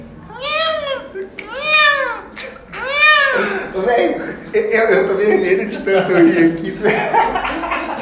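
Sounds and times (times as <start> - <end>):
person imitating a kitten's meow: 0.3 - 3.4
laughter: 3.2 - 8.0
speech: 3.8 - 7.7.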